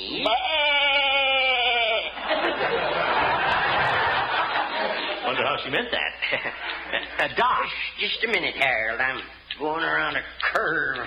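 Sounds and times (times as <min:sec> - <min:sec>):
sheep bleating: 0:00.2 - 0:02.2
laughter: 0:01.6 - 0:07.4
speech: 0:05.5 - 0:11.0.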